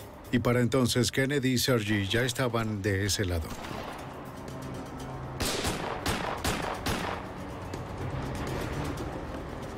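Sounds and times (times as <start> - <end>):
noisy outdoor background: 0.0 - 9.7
speech: 0.3 - 3.9
gunshots: 5.4 - 7.3.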